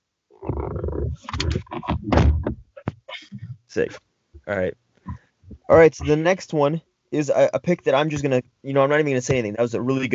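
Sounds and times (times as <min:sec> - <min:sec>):
door creaking and rattling as it is pushed shut: 0:00.5 - 0:02.9
door closing with a solid thunk: 0:01.2 - 0:03.0
speech: 0:03.7 - 0:04.8, 0:05.7 - 0:10.1.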